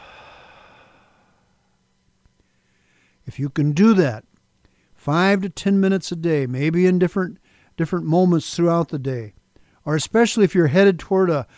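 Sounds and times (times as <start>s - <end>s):
slow exhaled breath during a guided breathing exercise: 0.0s - 1.6s
speech: 3.3s - 4.3s, 5.0s - 11.5s.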